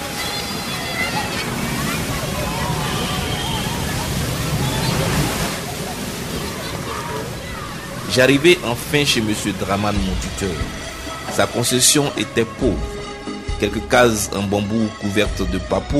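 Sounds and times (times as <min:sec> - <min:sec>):
faint voice-like traces: 0:00.0 - 0:11.5
rushing surf with waves washing onto the shore: 0:00.0 - 0:14.3
speech: 0:08.2 - 0:13.0, 0:13.6 - 0:15.9.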